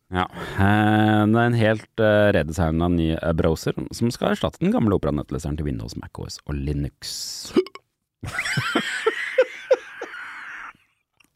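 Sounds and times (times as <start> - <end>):
speech: 0.1 - 9.2
person hiccuping: 7.5 - 7.8.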